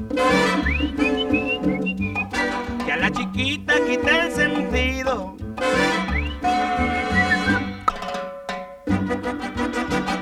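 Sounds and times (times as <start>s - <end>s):
musical accompaniment with a low rhythmic bass: 0.0s - 10.2s
person whistling a bright sliding melody: 0.2s - 2.6s, 6.0s - 7.8s.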